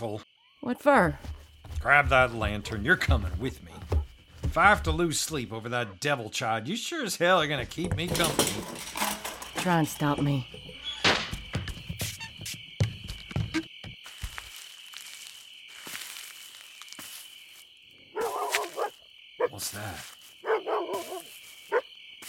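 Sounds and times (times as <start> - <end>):
speech: 0.0 - 9.0, 9.6 - 10.6
dog barking: 18.1 - 19.6, 20.4 - 21.9.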